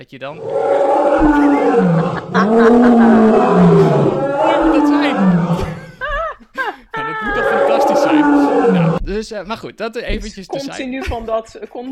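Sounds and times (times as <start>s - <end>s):
speech: 0.0s - 5.7s, 9.2s - 11.9s
lion roaring at night in the countryside: 0.4s - 6.0s, 7.3s - 9.0s
laughter: 1.2s - 9.0s.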